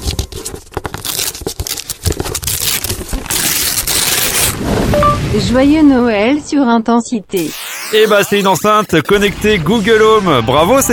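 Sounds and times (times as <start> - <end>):
wrapping paper torn and crumpled as a Christmas gift is unwrapped: 0.0 - 4.6
speech: 5.4 - 10.9.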